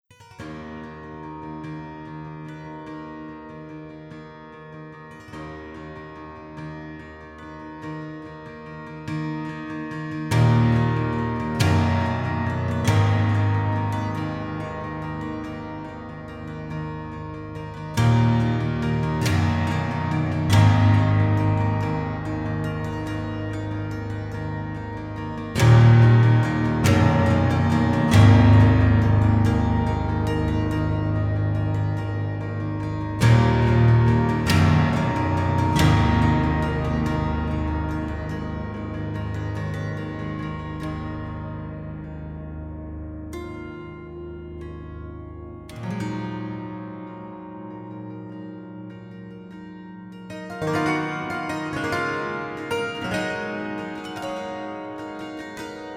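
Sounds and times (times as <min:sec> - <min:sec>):
plucked piano: 0:10.3 - 0:47.4, 0:50.3 - 0:55.9.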